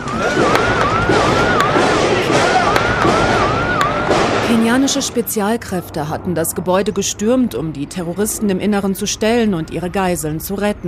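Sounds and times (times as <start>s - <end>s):
sharp loud gunshots: 0.0s - 5.0s
wailing siren rising and falling: 0.0s - 6.1s, 8.0s - 10.8s
constant din of chaotic noise: 0.0s - 10.8s
speech: 4.6s - 10.8s.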